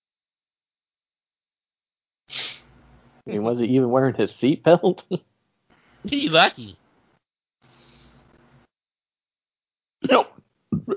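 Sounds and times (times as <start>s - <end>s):
speech: 3.3s - 5.3s, 6.0s - 6.8s, 10.1s - 10.3s
hiccup rolling into a short throaty burp: 10.0s - 10.9s.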